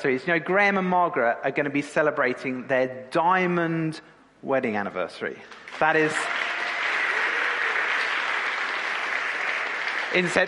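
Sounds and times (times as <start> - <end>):
speech: 0.0 - 6.4, 10.1 - 10.4
audience applause for a diamond wedding anniversary: 5.5 - 10.4.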